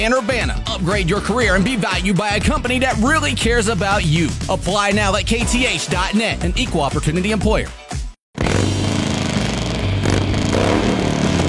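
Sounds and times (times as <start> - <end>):
speech: 0.0 - 7.8
motorcycle engine revving: 8.4 - 11.4.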